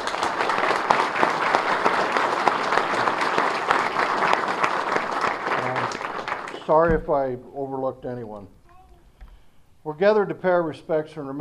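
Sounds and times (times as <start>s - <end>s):
crowd applause: 0.0s - 6.9s
speech: 6.7s - 8.6s, 9.8s - 11.4s.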